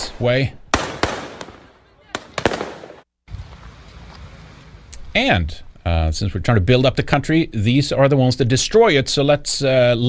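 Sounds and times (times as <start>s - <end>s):
speech: 0.2s - 0.6s, 5.2s - 10.0s
Kalashnikov rifles fired into the air during a riot near a police station: 0.7s - 3.1s.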